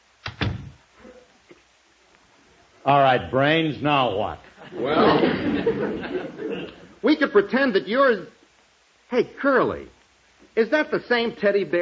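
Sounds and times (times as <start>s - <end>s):
door swinging shut: 0.3s - 0.8s
speech: 2.8s - 8.4s, 9.1s - 10.0s, 10.6s - 11.8s
laughter: 4.6s - 7.0s.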